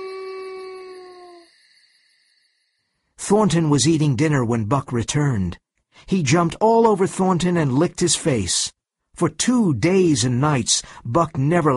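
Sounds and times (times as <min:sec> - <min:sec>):
wolf howling: 0:00.0 - 0:01.5
speech: 0:03.3 - 0:11.7.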